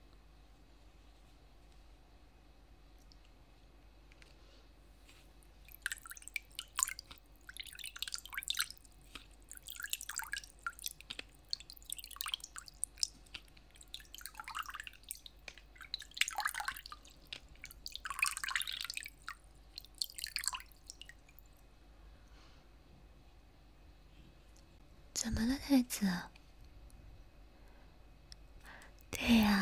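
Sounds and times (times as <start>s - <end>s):
low constant hum: 0.0s - 29.5s
water dripping while a bath is being prepared: 5.1s - 22.4s
speech: 25.2s - 26.3s.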